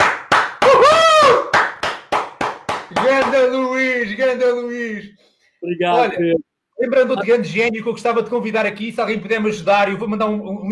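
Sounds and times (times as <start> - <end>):
loud sharp hand claps: 0.0 - 3.6
whooping whistle-like cheer: 0.6 - 1.6
speech: 3.2 - 10.6.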